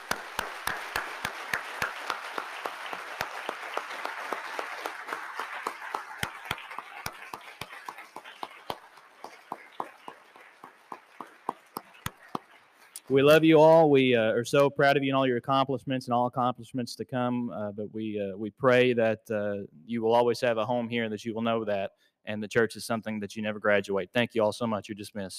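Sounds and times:
crowd applauding graduating seniors: 0:00.0 - 0:13.3
speech: 0:13.1 - 0:25.3.

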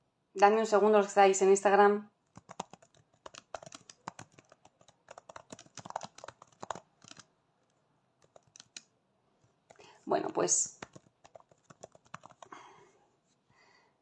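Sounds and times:
speech: 0:00.4 - 0:02.5, 0:10.5 - 0:10.8
typing on a computer keyboard: 0:02.3 - 0:07.3, 0:08.2 - 0:08.9, 0:10.6 - 0:12.6.

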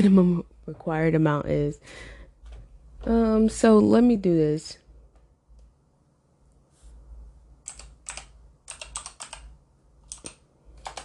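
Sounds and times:
speech: 0:00.0 - 0:02.2, 0:03.0 - 0:04.8
typing on a computer keyboard: 0:07.6 - 0:11.0.

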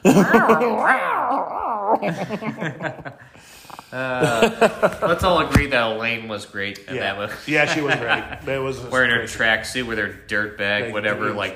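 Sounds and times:
laughter: 0:00.0 - 0:01.2, 0:01.8 - 0:05.5, 0:06.9 - 0:09.2
speech: 0:00.0 - 0:11.5
cat yowling: 0:00.2 - 0:02.2.

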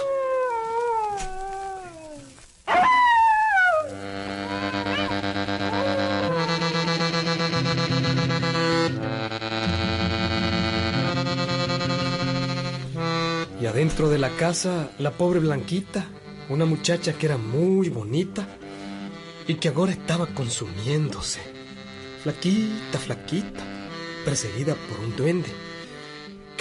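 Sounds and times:
dog howling at night on a street corner: 0:00.0 - 0:07.3
steady sustained musical chords: 0:03.9 - 0:26.5
speech: 0:13.8 - 0:18.6, 0:19.5 - 0:21.6, 0:22.2 - 0:25.6.

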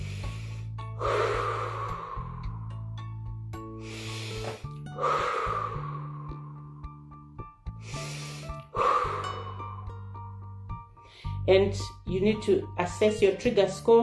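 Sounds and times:
slow deep breaths in a guided relaxation exercise: 0:00.0 - 0:02.9, 0:03.7 - 0:07.0, 0:07.7 - 0:10.2, 0:11.0 - 0:11.4
soft sustained musical drone: 0:00.0 - 0:11.5
speech: 0:11.5 - 0:14.0.

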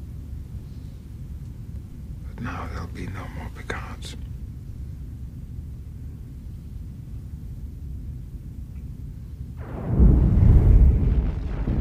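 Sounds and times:
speech: 0:02.4 - 0:04.4
deep rumbling explosion of a star's quantum implosion: 0:09.6 - 0:11.8.

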